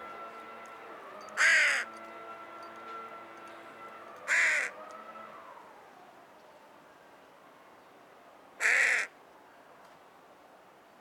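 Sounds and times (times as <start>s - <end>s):
Carrion crow Corvus corone cawing: 1.4s - 1.9s, 4.3s - 4.8s, 8.6s - 9.1s.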